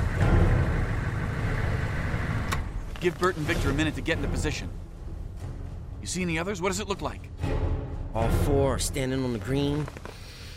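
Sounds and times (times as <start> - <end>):
car engine idling: 0.0 - 3.0
speech: 3.0 - 4.8, 6.0 - 10.2.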